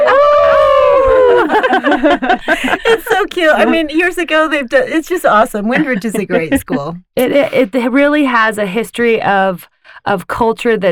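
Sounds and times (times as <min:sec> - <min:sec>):
people making short wavering yips: 0:00.0 - 0:02.0
several human voices howling like wolves: 0:00.0 - 0:02.0
people laughing: 0:00.0 - 0:04.2, 0:05.6 - 0:07.6
speech: 0:02.9 - 0:10.9.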